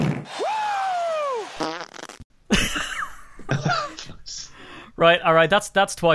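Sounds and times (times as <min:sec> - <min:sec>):
long squeaky fart dropping in pitch: 0:00.0 - 0:00.3, 0:01.6 - 0:02.2
laughter: 0:02.5 - 0:04.5
speech: 0:05.0 - 0:06.1.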